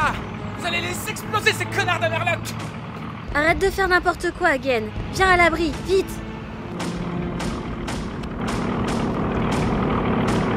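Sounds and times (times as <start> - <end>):
warplanes flying low overhead: 0.0 - 10.5
speech: 0.7 - 6.2
sharp bursts: 6.5 - 10.5.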